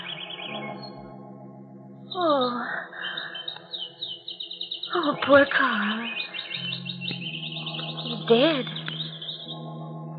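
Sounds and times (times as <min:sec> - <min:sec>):
caged birds chirping and trilling: 0:00.0 - 0:10.1
speech: 0:05.0 - 0:06.2, 0:08.3 - 0:08.8.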